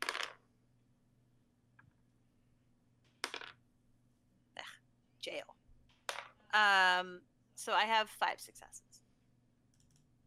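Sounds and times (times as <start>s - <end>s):
dice clattering onto a hard surface: 0.0s - 0.4s, 3.1s - 3.6s, 6.1s - 6.4s
speech: 6.5s - 9.0s.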